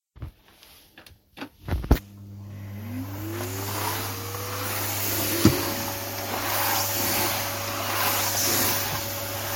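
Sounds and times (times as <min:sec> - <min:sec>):
vacuum cleaner running: 0:01.9 - 0:09.5.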